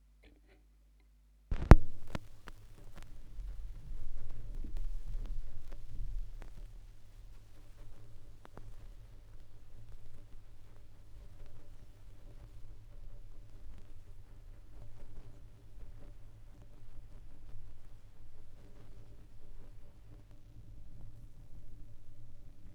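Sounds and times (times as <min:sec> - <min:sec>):
vinyl record noise: 0:00.1 - 0:22.7.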